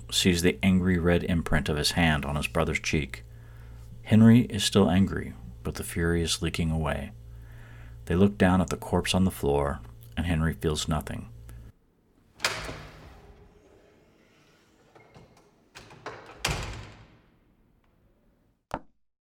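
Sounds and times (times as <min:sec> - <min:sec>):
speech: 0:00.1 - 0:03.3, 0:04.1 - 0:07.2, 0:08.1 - 0:11.3
heavy parlor doors opening: 0:12.1 - 0:18.6.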